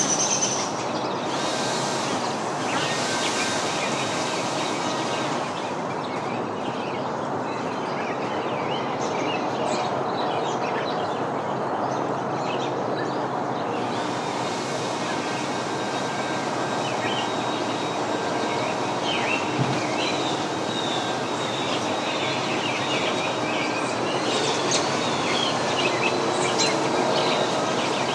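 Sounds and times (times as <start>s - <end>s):
leaf blower roaring: 0.0s - 6.4s, 13.6s - 28.1s
backyard birds chirping and whistling: 0.0s - 11.2s, 11.9s - 28.1s.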